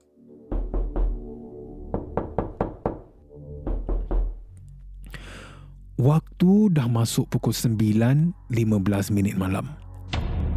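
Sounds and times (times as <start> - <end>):
hard solid knocking on a door: 0.5 - 1.2, 1.9 - 4.4
speech: 6.0 - 9.8.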